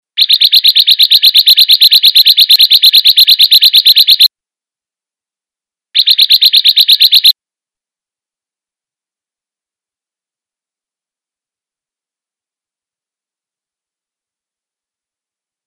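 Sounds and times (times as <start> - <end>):
ciblek bird in a rice field: 0.2 - 4.3, 6.0 - 7.3.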